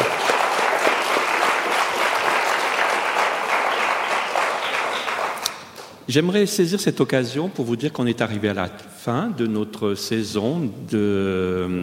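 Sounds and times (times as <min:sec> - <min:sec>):
conference audience applauding the speaker: 0:00.0 - 0:06.0
speech: 0:06.1 - 0:11.8.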